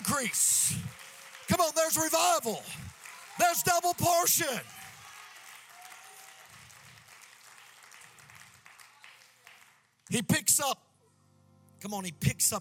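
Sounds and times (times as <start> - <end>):
congregation clapping hands: 0.0 - 10.4
speech: 0.2 - 4.8, 10.1 - 10.8, 11.8 - 12.6.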